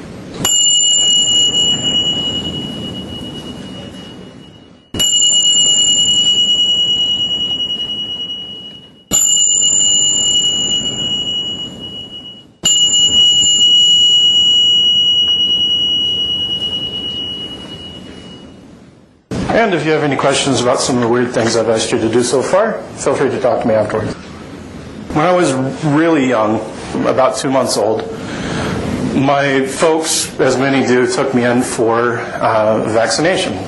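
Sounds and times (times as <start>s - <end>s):
tingsha chimes ringing: 0.4s - 18.9s
speech: 19.6s - 24.1s, 25.2s - 28.2s, 29.2s - 33.6s.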